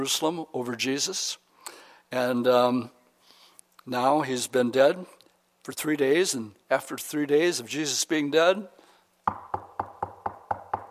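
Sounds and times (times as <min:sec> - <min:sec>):
speech: 0:00.0 - 0:03.0, 0:03.9 - 0:09.4
quick knocks on a door with hollow thuds: 0:09.3 - 0:10.8.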